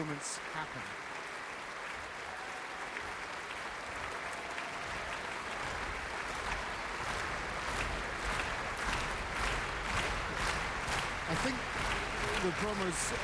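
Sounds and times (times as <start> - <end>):
large concert audience and orchestra applauding: 0.0 - 13.2
speech: 0.2 - 1.2, 11.4 - 11.7, 12.4 - 13.2.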